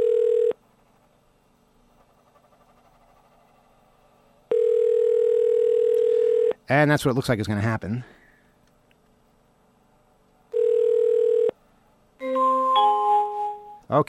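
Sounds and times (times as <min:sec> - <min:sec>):
unanswered phone line ringing tone: 0:00.0 - 0:00.6, 0:04.5 - 0:06.6, 0:10.5 - 0:11.6, 0:12.2 - 0:13.8
speech: 0:06.7 - 0:08.2.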